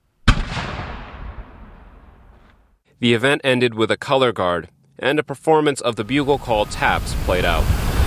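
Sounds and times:
cannon shot fired at a 9/11 memorial ceremony: 0:00.2 - 0:02.5
speech: 0:03.0 - 0:07.9.

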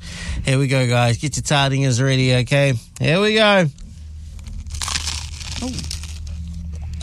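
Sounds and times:
speech: 0:00.5 - 0:03.8, 0:05.6 - 0:06.0
crunchy biting and chewing of overcooked food: 0:04.4 - 0:07.0.

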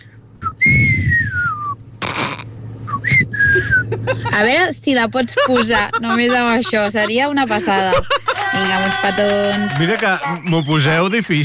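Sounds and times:
person whistling a song melody: 0:00.4 - 0:01.8, 0:02.9 - 0:03.9
laughter: 0:03.5 - 0:10.7
speech: 0:04.4 - 0:11.4.

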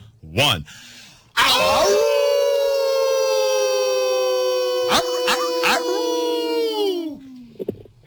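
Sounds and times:
speech: 0:00.3 - 0:02.2
human voices howling like a wolf: 0:01.4 - 0:07.6.

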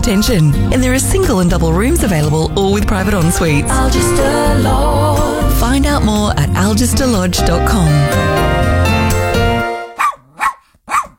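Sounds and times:
speech: 0:00.0 - 0:08.8
dog barking: 0:10.0 - 0:11.1.

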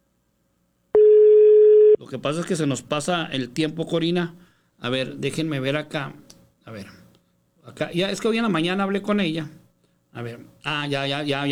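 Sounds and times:
steady single-pitched electronic telephone tone on an unanswered call: 0:01.0 - 0:02.0
speech: 0:02.1 - 0:07.0, 0:07.7 - 0:11.4.

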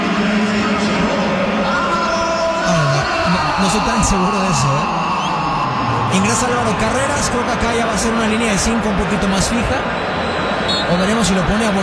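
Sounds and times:
dense stadium crowd roaring: 0:00.0 - 0:11.8
stadium crowd shrill whistling in disapproval: 0:01.7 - 0:11.8
speech: 0:03.6 - 0:05.2, 0:06.1 - 0:10.3, 0:10.9 - 0:11.8.

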